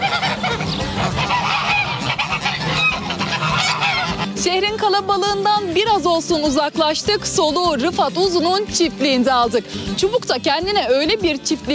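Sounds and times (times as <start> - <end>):
farm poultry honking and calling, ducks or turkeys: 0.0 - 5.4
speech: 4.6 - 11.7.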